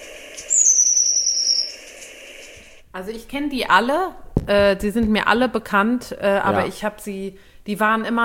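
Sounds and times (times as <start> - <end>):
Long-tailed tit high thin alarm call whistle: 0.0 - 2.6
speech: 2.9 - 8.2.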